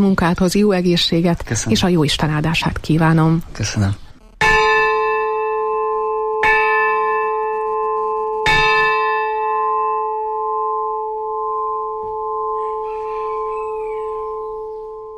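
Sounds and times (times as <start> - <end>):
speech: 0.0 - 4.0
church bell tolling: 4.4 - 15.1.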